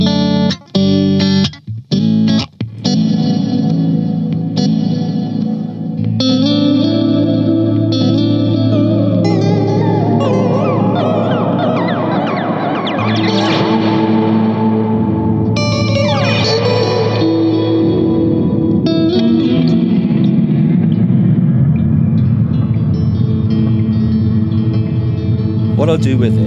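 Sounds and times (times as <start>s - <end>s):
electric guitar through a dark tape-style delay and reverb pedal: 0.0s - 26.4s
speech: 26.1s - 26.4s.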